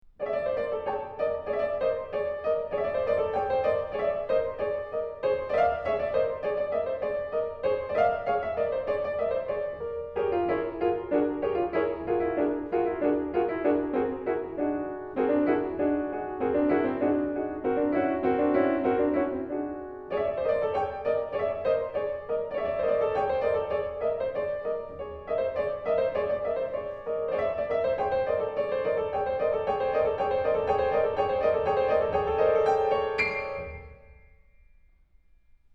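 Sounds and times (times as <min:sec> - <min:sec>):
solo piano burlesque piece: 0:00.0 - 0:35.7.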